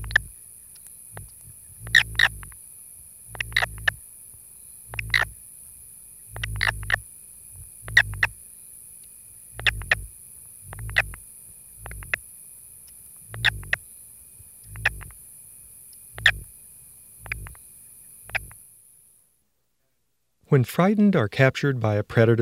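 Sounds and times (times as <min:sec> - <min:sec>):
male southern toad squeaky release calls while held: 0:00.0 - 0:02.6, 0:03.3 - 0:04.0, 0:04.9 - 0:05.4, 0:06.3 - 0:07.0, 0:07.6 - 0:08.4, 0:09.5 - 0:11.2, 0:11.8 - 0:12.2, 0:12.9 - 0:13.9, 0:14.5 - 0:15.2, 0:16.0 - 0:16.5, 0:17.2 - 0:17.6, 0:18.2 - 0:18.6
speech: 0:20.5 - 0:22.3.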